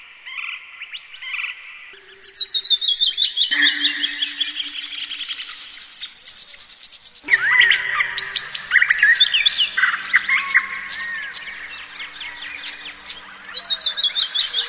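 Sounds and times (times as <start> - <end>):
birds singing in a busy chorus of chirps, whistled slurs and trills: 0.2 - 14.6.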